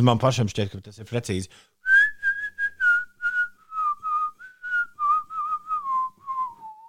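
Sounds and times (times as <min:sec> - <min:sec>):
speech: 0:00.0 - 0:01.7
person whistling a pop song melody: 0:01.8 - 0:06.8.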